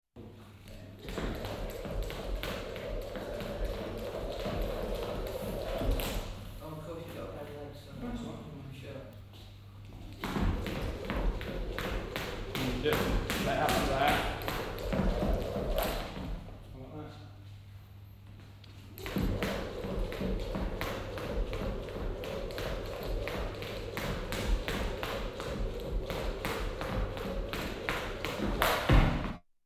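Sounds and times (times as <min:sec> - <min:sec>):
rope skipping as a sports warm-up: 0:00.7 - 0:06.5, 0:09.9 - 0:16.7, 0:18.7 - 0:29.4.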